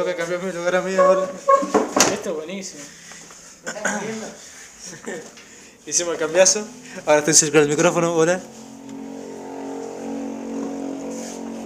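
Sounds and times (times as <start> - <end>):
speech: 0.0 - 8.6
motorcycle engine running steadily: 6.2 - 11.6.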